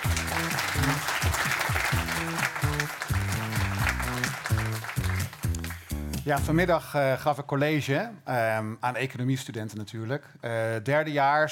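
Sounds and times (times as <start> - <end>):
audience applause: 0.0 - 6.0
upbeat instrumental music: 0.0 - 6.9
speech: 6.3 - 11.5.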